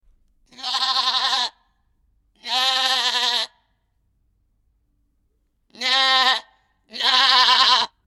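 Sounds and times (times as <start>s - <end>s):
animal bleating: 0.5s - 1.6s, 2.4s - 3.6s, 5.7s - 8.0s.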